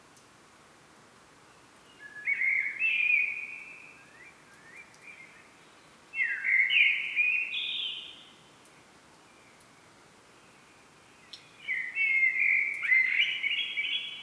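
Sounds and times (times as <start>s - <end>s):
common blackbird Turdus merula singing mellow whistles: 2.0s - 5.4s, 6.2s - 8.0s, 11.6s - 14.2s.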